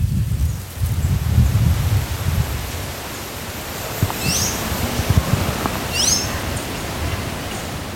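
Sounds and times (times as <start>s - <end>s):
wind and leaves rustling in a forest: 0.0s - 7.9s
bird chirps in a forest: 3.9s - 7.9s.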